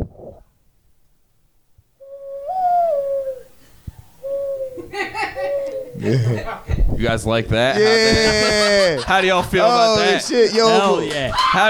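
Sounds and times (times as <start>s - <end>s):
man imitating a bird call: 2.0s - 7.4s
laughter: 4.8s - 11.6s
speech: 6.0s - 11.6s.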